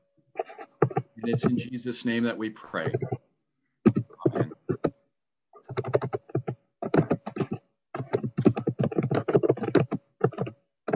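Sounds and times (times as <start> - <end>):
rapid computer keyboard typing: 0.4 - 1.8, 2.8 - 3.2, 3.9 - 5.0, 5.6 - 10.9
speech: 1.2 - 3.3.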